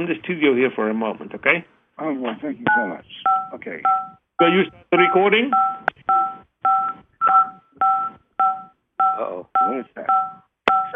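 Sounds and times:
speech: 0:00.0 - 0:05.7
touch-tone phone keypad beeps from accidental presses: 0:02.7 - 0:10.9.

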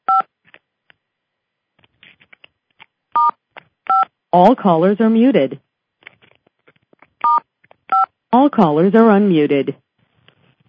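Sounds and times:
telephone keypad dual-tone beeps from pressing star and 6 on a conference call: 0:03.2 - 0:04.1, 0:07.2 - 0:08.1
speech: 0:04.3 - 0:05.6, 0:08.4 - 0:09.8.

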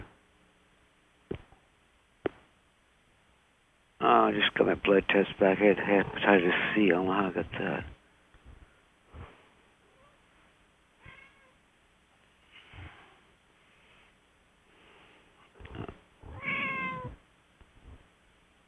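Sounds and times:
speech: 0:04.3 - 0:08.0
cat meowing: 0:11.0 - 0:11.6, 0:15.6 - 0:17.2.

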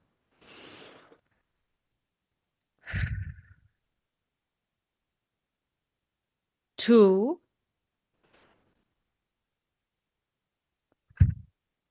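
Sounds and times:
deep breaths from a guided relaxation exercise: 0:00.3 - 0:01.4
speech: 0:06.9 - 0:07.4.

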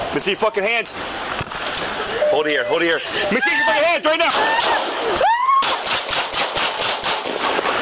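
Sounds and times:
speech: 0:00.2 - 0:01.3, 0:02.4 - 0:05.4
gunshots during a police confrontation at a check cashing business: 0:05.6 - 0:07.7.

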